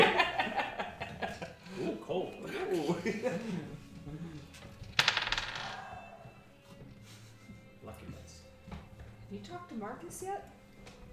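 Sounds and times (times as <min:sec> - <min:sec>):
laughter: 0:00.0 - 0:03.8
speech: 0:03.0 - 0:04.3, 0:09.8 - 0:10.6
dice tossed onto a hard surface: 0:04.8 - 0:05.9.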